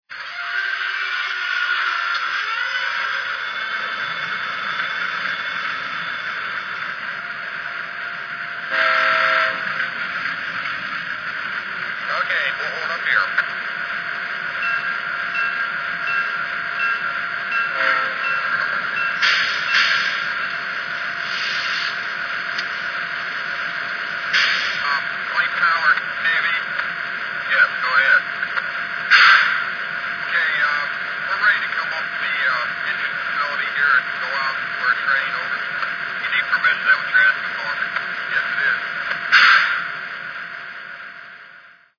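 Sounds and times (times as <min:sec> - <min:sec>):
U30C trains: 0:00.1 - 0:41.9.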